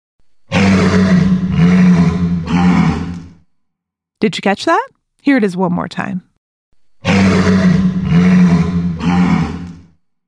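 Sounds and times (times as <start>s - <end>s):
walrus bellowing: 0.5s - 3.3s, 7.0s - 9.8s
speech: 4.2s - 6.3s, 7.0s - 7.8s.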